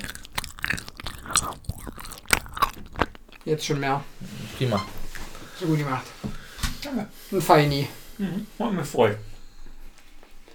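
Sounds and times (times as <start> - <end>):
wet mouth sounds: 0.0 - 3.5
crunchy chewing of a hazelnut caramel chocolate praline with nougat cream: 0.0 - 3.6
speech: 3.4 - 5.0, 5.6 - 6.2, 6.8 - 9.3.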